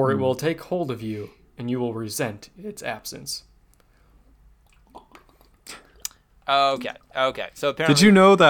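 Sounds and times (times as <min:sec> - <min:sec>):
speech: 0:00.0 - 0:03.5, 0:06.5 - 0:08.4
person swallowing water: 0:04.6 - 0:06.3
person drinking water with gulps and slurps: 0:04.6 - 0:07.2.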